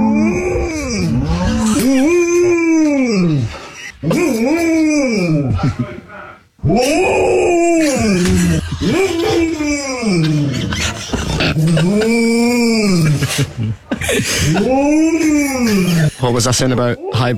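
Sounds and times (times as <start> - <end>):
female dog making long moaning calls like a cow's moo: 0.0 - 5.6, 6.6 - 13.3
laughter: 1.0 - 6.4, 7.8 - 16.8
speech: 16.4 - 17.3.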